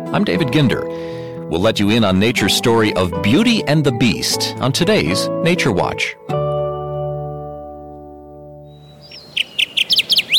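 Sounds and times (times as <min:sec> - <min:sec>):
speech: 0:00.1 - 0:06.3
Kirtland's warbler singing: 0:08.6 - 0:10.3.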